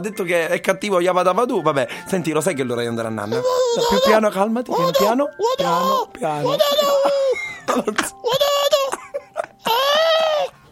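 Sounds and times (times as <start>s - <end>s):
speech: 0.0s - 8.4s
baby crying: 3.2s - 10.7s.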